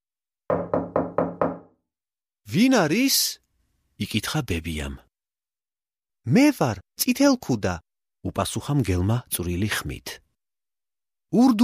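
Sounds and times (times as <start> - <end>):
knocking on the door of a grandmother's house: 0.5 - 1.8
speech: 2.5 - 3.4, 4.0 - 5.0, 6.3 - 10.2, 11.3 - 11.6.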